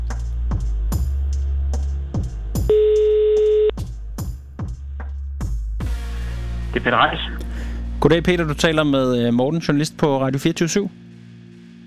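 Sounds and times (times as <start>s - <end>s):
rhythmic music with sharp repeating beats: 0.0s - 2.7s, 3.4s - 7.3s
telephone ringback tone of an outgoing call to the police: 2.7s - 3.7s
speech: 6.8s - 7.4s, 8.0s - 11.0s.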